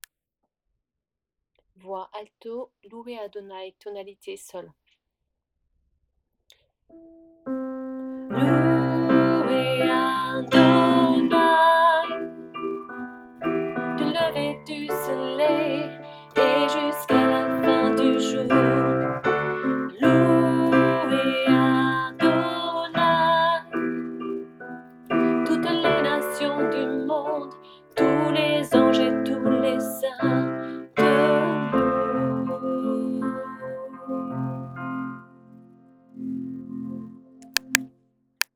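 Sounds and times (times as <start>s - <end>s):
alto voice singing: 8.2s - 23.8s, 25.1s - 34.5s.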